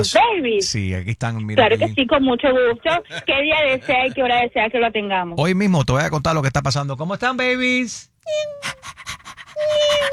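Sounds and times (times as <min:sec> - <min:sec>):
speech: 0:00.0 - 0:10.1
small dog panting: 0:08.4 - 0:10.1.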